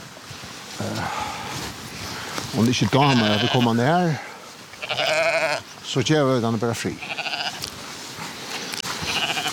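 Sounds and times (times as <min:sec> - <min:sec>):
constant rough noise: 0:00.0 - 0:09.5
speech: 0:02.5 - 0:04.3, 0:05.9 - 0:07.2
weak newborn lamb bleating during lambing on a farm: 0:03.0 - 0:03.8, 0:04.7 - 0:05.6, 0:06.9 - 0:07.6, 0:09.0 - 0:09.5.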